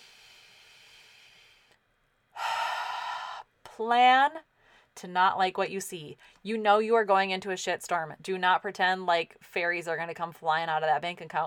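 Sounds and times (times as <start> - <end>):
breathy exhale out through the mouth: 0.0 - 1.8, 2.4 - 3.5
deep breath in through the nose: 0.0 - 1.8
speech: 3.8 - 11.4.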